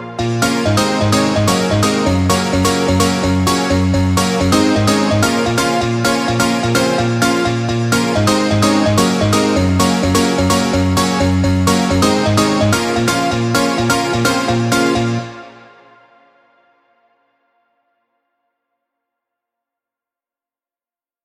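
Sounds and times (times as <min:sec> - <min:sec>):
music loop: 0:00.2 - 0:15.9.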